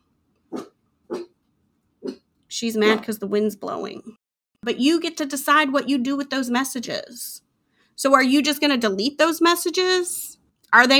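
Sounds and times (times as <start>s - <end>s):
puppy barking: 0.5s - 1.3s
speech: 2.6s - 10.9s.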